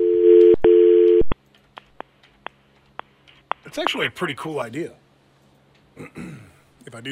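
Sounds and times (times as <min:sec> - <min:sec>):
steady telephone tone while a call is dialed: 0:00.0 - 0:01.3
speech: 0:03.7 - 0:05.0, 0:06.9 - 0:07.1.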